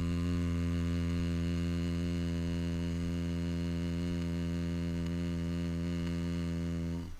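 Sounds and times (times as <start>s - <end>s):
low-pitched closed-lip humming as a voice resonance exercise: 0.0s - 7.1s.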